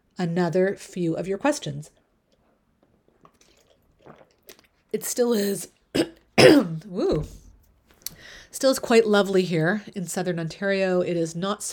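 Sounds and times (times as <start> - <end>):
speech: 0.2 - 2.0, 4.9 - 7.4, 8.2 - 11.7
person sipping water: 2.0 - 6.1.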